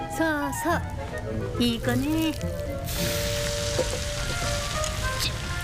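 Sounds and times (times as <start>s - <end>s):
speech: 0.2s - 4.1s
bacon frying in a pan: 2.1s - 5.6s.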